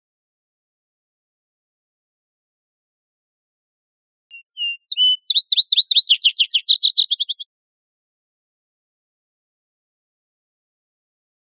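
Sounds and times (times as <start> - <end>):
vesper sparrow song with whistles and trill: 4.3 - 7.5.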